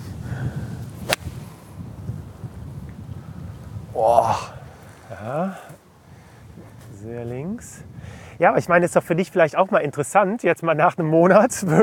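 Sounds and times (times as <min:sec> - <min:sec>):
eight-iron golf swing swish and strike on an uphill shot: 0:01.0 - 0:01.6
speech: 0:04.0 - 0:04.5, 0:05.2 - 0:05.8, 0:07.0 - 0:11.8.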